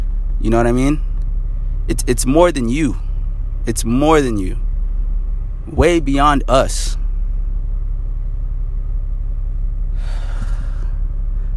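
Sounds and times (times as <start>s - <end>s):
car engine rumble heard inside a car: 0.0s - 11.5s
speech: 0.4s - 1.1s, 1.9s - 4.6s, 5.6s - 7.0s
short breathy rush of hiss: 9.9s - 11.5s.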